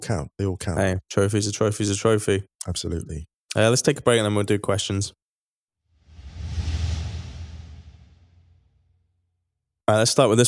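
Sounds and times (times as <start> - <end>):
speech: 0.0 - 5.2, 9.9 - 10.4
low rumble: 6.1 - 8.6
broad whoosh transition sound effect: 6.1 - 8.7.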